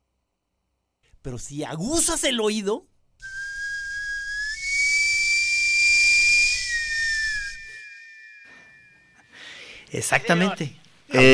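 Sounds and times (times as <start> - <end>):
speech: 1.2 - 3.3, 9.9 - 11.3
sweet potato vendor cart steam whistle shrieking: 3.2 - 9.3.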